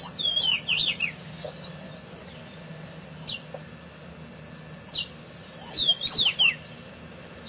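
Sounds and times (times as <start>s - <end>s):
Pedro-ceroulo warbled whistles: 0.0s - 1.2s, 4.9s - 6.6s
steady high-pitched background hum: 0.0s - 7.4s.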